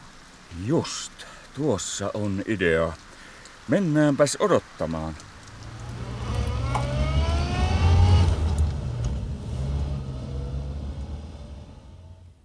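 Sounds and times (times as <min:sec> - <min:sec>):
speech: 0:00.5 - 0:03.1, 0:03.7 - 0:05.3
car engine revving and pulling away: 0:05.2 - 0:12.4.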